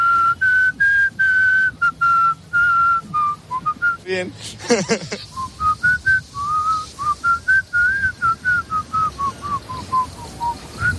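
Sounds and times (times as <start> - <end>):
person whistling a wandering melody: 0.0 - 4.1, 5.3 - 10.9
speech: 4.1 - 5.4
laughter: 4.4 - 5.4.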